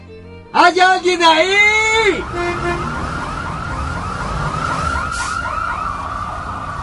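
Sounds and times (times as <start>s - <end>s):
street traffic rumble: 0.0s - 6.8s
speech: 0.6s - 3.0s
police car and ambulance sirens wailing: 1.6s - 6.8s.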